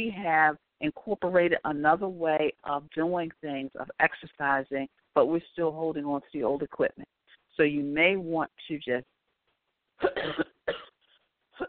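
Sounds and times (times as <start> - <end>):
speech: 0.0 - 9.1, 10.0 - 10.8
person coughing: 10.0 - 11.0.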